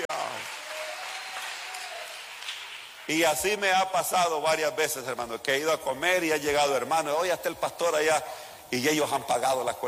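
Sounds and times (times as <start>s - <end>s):
church congregation applause: 0.1s - 3.1s
speech: 3.1s - 9.8s.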